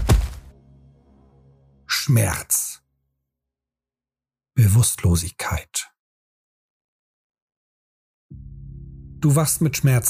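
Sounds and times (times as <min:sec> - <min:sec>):
body slamming onto the ground after falling down a hole: 0:00.0 - 0:00.5
speech: 0:02.1 - 0:02.8, 0:04.6 - 0:05.9, 0:09.2 - 0:10.0.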